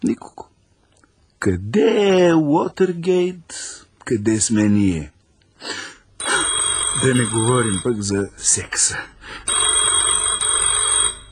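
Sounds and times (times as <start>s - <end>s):
speech: 0.0s - 0.5s, 1.4s - 5.9s, 7.0s - 9.7s
telephone ringing with an electronic trill: 6.2s - 8.3s, 9.4s - 11.3s.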